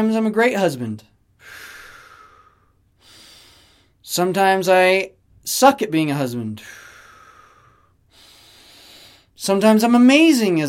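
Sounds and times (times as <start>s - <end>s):
speech: 0.0s - 1.6s, 4.1s - 6.8s, 9.4s - 10.6s
person breathing in and out during a guided meditation: 1.4s - 4.0s, 6.6s - 9.4s.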